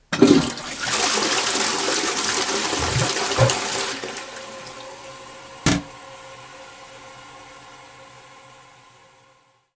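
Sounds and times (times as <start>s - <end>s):
water being drained: 0.2s - 4.2s.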